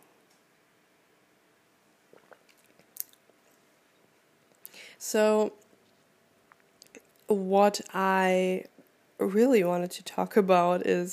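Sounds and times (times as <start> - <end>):
person sipping a drink: 2.1 - 3.6
speech: 5.0 - 5.6, 7.3 - 11.1.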